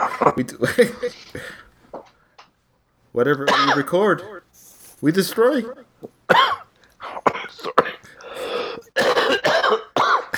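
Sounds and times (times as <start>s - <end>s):
harsh throaty coughing: 0.0s - 1.6s, 3.5s - 4.4s, 6.3s - 10.3s
laughter: 0.0s - 2.1s
speech: 0.2s - 1.6s, 3.1s - 4.4s, 5.0s - 6.5s.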